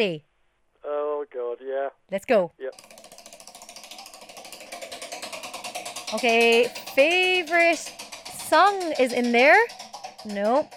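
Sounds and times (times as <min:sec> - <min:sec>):
speech: 0:00.0 - 0:03.1, 0:06.1 - 0:10.7
prize wheel spinning in a game: 0:02.7 - 0:10.7.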